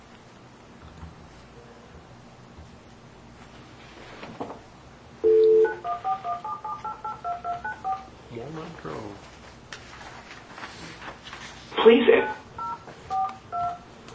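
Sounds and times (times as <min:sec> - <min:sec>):
touch-tone phone beeps as a phone number is dialed: 0:05.2 - 0:08.1, 0:12.2 - 0:13.8.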